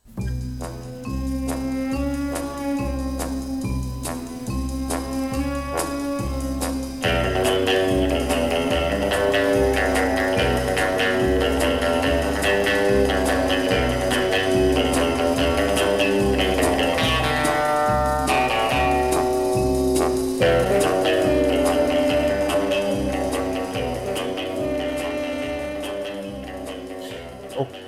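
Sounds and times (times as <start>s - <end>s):
recorded orchestral spy film theme with driving bass and brass: 0.2s - 27.8s.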